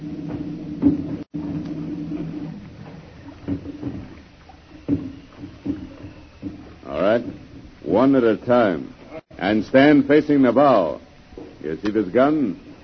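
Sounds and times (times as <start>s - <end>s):
creaking rowboat hull: 0.0s - 12.8s
low rumble of water: 0.0s - 12.8s
hollow wooden knocks of a rowboat hauled alongside with a boat hook: 0.2s - 8.0s
speech: 8.0s - 11.0s, 11.6s - 12.7s.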